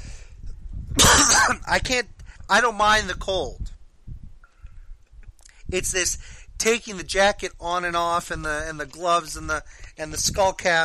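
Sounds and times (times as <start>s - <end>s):
harsh cough: 1.0s - 1.6s
rough throat-clearing: 1.0s - 1.6s
speech: 1.7s - 3.7s, 5.7s - 10.8s.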